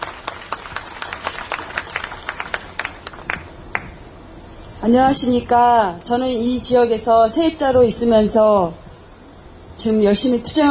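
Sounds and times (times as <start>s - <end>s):
audience applause welcoming a speaker: 0.0s - 3.9s
speech: 4.8s - 8.8s, 9.8s - 10.7s.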